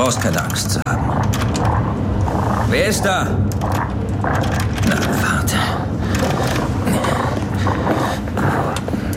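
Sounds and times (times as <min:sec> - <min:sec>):
speech: 0:00.0 - 0:01.4, 0:02.7 - 0:05.8
big wolf growling and snarling: 0:01.0 - 0:05.4, 0:06.1 - 0:09.0.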